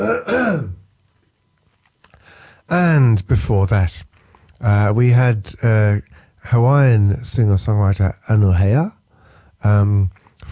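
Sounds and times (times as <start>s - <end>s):
throat clearing with a harsh voiced rasp: 0.0s - 0.8s
speech: 2.7s - 9.0s, 9.6s - 10.5s.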